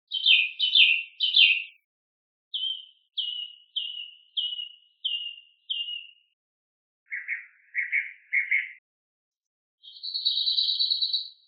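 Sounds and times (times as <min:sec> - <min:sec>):
bird chirps: 0:00.1 - 0:01.9, 0:02.5 - 0:06.4, 0:07.1 - 0:08.8, 0:09.8 - 0:11.4.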